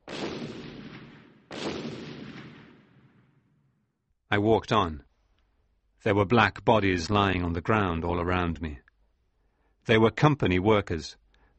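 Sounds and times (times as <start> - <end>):
heavy blasting explosions from excavating near a river: 0.0 - 3.4
speech: 4.3 - 5.1, 6.0 - 8.8, 9.8 - 11.5.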